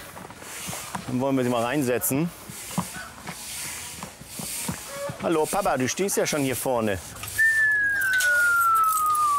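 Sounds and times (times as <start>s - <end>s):
speech: 1.1s - 2.4s, 5.3s - 7.2s
whistle tone sliding lower in pitch: 7.3s - 9.3s.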